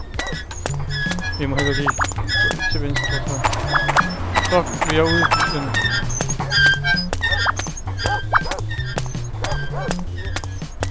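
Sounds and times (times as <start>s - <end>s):
low stepping electronic tone: 0.0s - 10.5s
sharp clicking taps: 0.0s - 10.8s
speech: 1.4s - 6.8s
dog barking in a video game: 9.4s - 10.0s.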